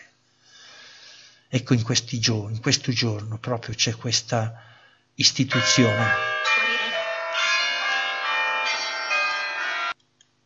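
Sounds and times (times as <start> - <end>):
speech: 1.5 - 6.3
church bells pealing: 5.4 - 10.0.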